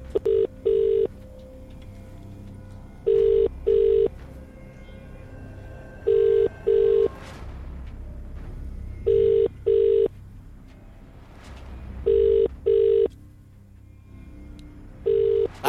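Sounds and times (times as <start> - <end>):
telephone ringing unanswered: 0.2 - 1.1, 3.1 - 4.1, 6.1 - 7.1, 9.1 - 10.1, 12.1 - 13.1, 15.1 - 15.5.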